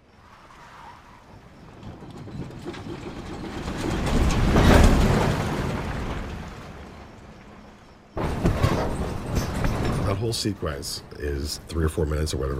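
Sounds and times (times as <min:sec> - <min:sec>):
interior back of a truck rattling and rumbling: 0:01.3 - 0:07.1, 0:08.2 - 0:11.0
speech: 0:10.2 - 0:12.5.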